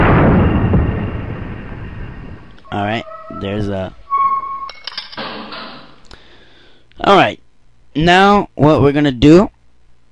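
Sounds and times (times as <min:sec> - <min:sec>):
torpedo being loaded aboard a submarine in a video game: 0:00.0 - 0:07.9
speech: 0:02.9 - 0:04.0, 0:07.0 - 0:07.4, 0:08.0 - 0:09.6.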